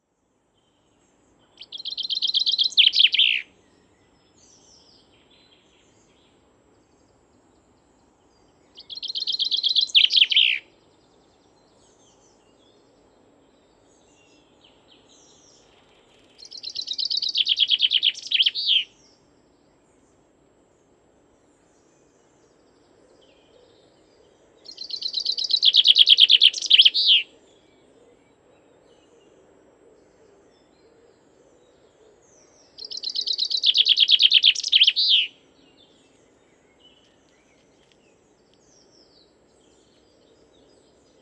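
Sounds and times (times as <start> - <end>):
chaffinch singing: 1.4 - 6.4, 7.5 - 12.8, 13.8 - 19.2, 24.6 - 27.3, 32.4 - 41.1.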